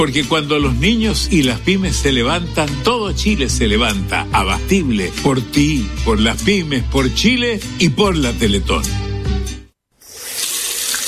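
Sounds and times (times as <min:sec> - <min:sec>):
speech: 0:00.0 - 0:09.0
water gushing from an opened household tap: 0:10.0 - 0:11.0.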